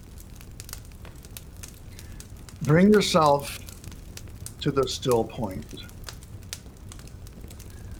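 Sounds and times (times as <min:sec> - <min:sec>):
fire crackling with pops and snaps: 0:00.0 - 0:07.9
speech: 0:02.6 - 0:03.6, 0:04.6 - 0:06.0.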